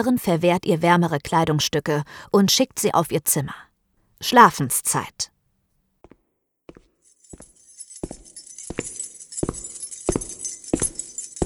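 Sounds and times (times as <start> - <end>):
speech: 0.0 - 5.3
nurses in heavy shoes marching past: 6.0 - 11.4
many keys on belts jangling: 7.0 - 11.4.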